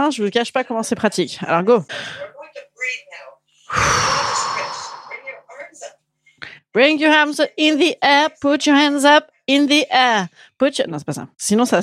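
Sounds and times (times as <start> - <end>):
speech: 0.0 - 2.3, 6.8 - 11.8
loud deep breath in and out: 3.7 - 5.4.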